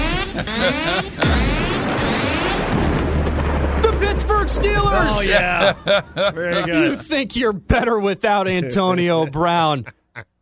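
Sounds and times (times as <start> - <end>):
laughter: 0.0 - 1.7, 5.1 - 7.9
loud rumbling crashes: 0.0 - 6.3
speech: 0.4 - 1.5, 4.5 - 10.3
booming cannon fire sound effect: 1.1 - 5.8.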